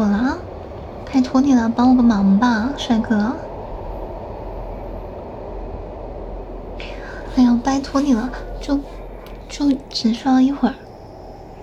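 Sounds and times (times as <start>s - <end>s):
subway train running with low rumble and rattling roar: 0.0s - 11.6s
speech: 1.1s - 3.4s, 7.4s - 10.8s
brief airy hiss: 2.8s - 11.6s.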